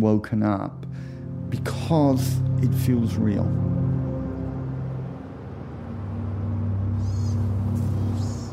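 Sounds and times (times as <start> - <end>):
speech: 0.0 - 3.8
low rumble of passing traffic: 1.2 - 8.5
brief high bird chirps: 6.9 - 8.5.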